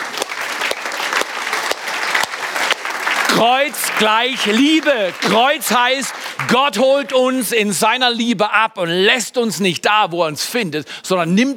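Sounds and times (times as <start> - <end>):
crowd applauding: 0.0 - 7.6
speech: 3.4 - 11.5.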